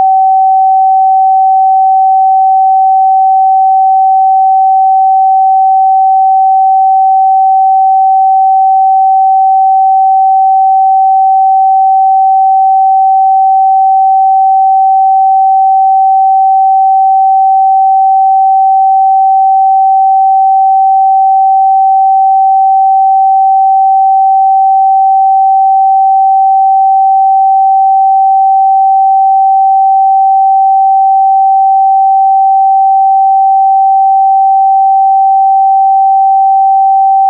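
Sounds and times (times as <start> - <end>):
sine waveform tone: 0.0 - 37.2.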